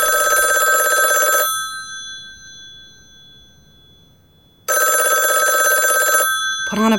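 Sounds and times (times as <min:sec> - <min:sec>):
old-fashioned telephone bell ringing: 0:00.0 - 0:06.9
speech: 0:06.8 - 0:06.9.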